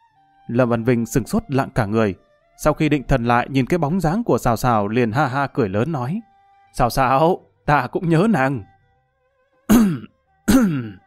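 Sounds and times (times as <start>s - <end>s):
speech: 0.5s - 8.7s, 9.7s - 11.0s
person fake coughing or clearing throat: 9.7s - 11.0s.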